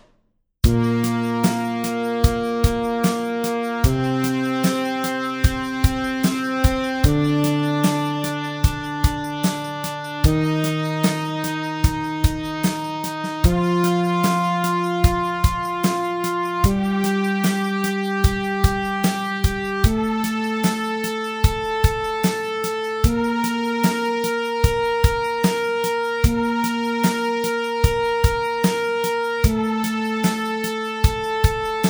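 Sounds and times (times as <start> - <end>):
slow B-flat major scale: 0.7 - 31.7.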